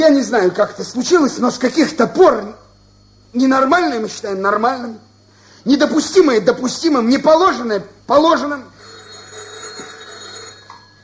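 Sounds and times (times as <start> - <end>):
speech: 0.0 - 2.6, 3.3 - 8.7
telephone ringing during a party committee meeting: 8.4 - 11.0.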